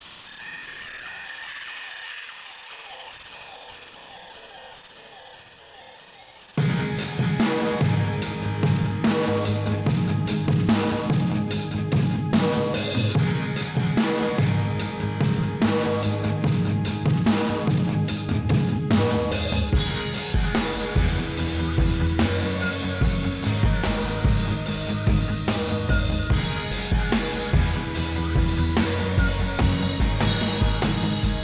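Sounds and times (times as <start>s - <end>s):
industrial rock music: 6.6s - 31.4s.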